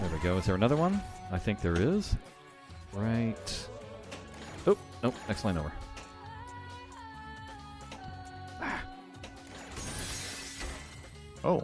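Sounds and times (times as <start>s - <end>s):
steady humming video game music: 0.0s - 11.6s
speech: 0.2s - 3.7s, 4.6s - 5.8s, 11.4s - 11.6s
video game glass shattering: 9.5s - 11.1s.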